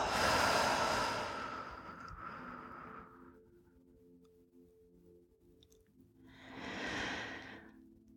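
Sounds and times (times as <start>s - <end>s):
slow deep breathing during a guided relaxation exercise: 0.0s - 3.6s, 6.2s - 7.9s.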